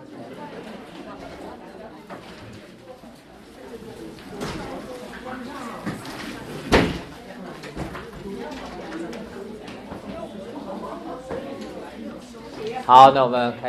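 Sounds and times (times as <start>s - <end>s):
people chattering in a church Sunday-school room: 0.0s - 13.6s
door shutting in a church Sunday-school room: 6.7s - 7.1s.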